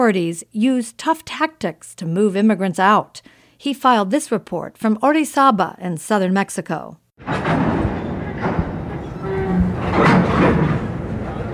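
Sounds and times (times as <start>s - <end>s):
speech: 0.1s - 7.8s
freight train rumbling while building up steam: 7.2s - 11.5s.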